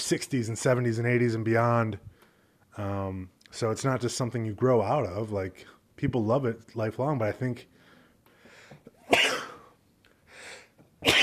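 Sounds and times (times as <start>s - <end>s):
speech: 0.1s - 2.1s, 2.8s - 7.7s
soft breathy intake: 7.8s - 10.8s
person sneezing: 8.9s - 9.8s, 10.4s - 11.2s.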